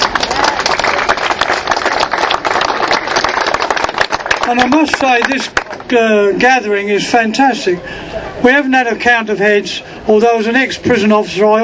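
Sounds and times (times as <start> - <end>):
audience applause with many hands clapping: 0.0 - 6.0
speech: 4.5 - 11.6.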